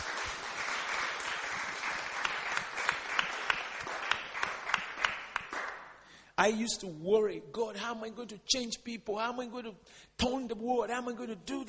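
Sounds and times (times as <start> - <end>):
congregation clapping in praise during a bilingual church service: 0.0 - 6.0
speech: 6.4 - 11.6.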